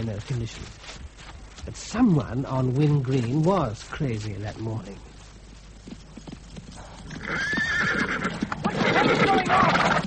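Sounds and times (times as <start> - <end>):
speech: 0.0 - 5.1
hooves of a galloping horse on a foggy windy morning: 0.0 - 10.0
horse whinnying loud and high: 7.1 - 10.0.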